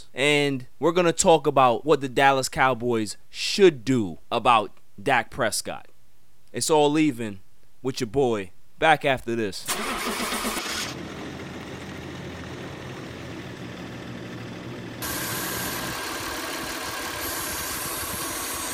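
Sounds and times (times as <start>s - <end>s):
speech: 0.1s - 5.9s, 6.5s - 10.6s
car engine cranking without catching: 9.7s - 18.7s.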